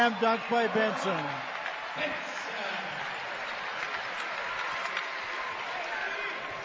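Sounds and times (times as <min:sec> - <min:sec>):
speech: 0:00.0 - 0:02.4
large arena crowd cheering and applauding at a basketball game: 0:00.0 - 0:06.6.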